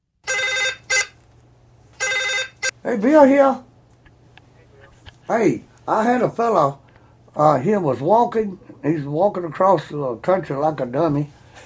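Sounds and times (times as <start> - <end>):
telephone ringing in bright trilling bursts: 0.2 - 1.2, 2.0 - 2.8
speech: 2.8 - 3.7, 5.3 - 6.8, 7.4 - 11.6.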